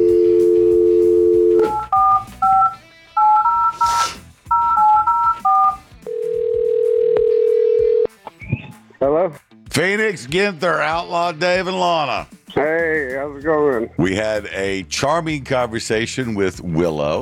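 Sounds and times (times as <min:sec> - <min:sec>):
steady telephone dial tone: 0:00.0 - 0:03.9, 0:04.5 - 0:08.1
touch-tone dialing beeps: 0:00.0 - 0:05.8
speech: 0:10.1 - 0:17.2.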